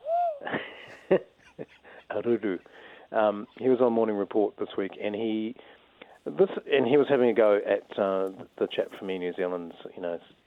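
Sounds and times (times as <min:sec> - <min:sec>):
person imitating owl hoot: 0:00.0 - 0:00.6
breathy wheezy exhalations: 0:00.0 - 0:03.7
speech: 0:01.1 - 0:10.4.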